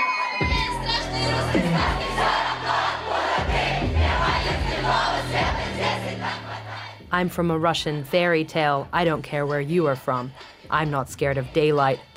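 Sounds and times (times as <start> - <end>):
large concert crowd chanting along to song lyrics: 0.2 - 7.1
pounding music with a steady rhythmic beat: 0.3 - 12.1
speech: 1.6 - 2.8, 7.1 - 12.1.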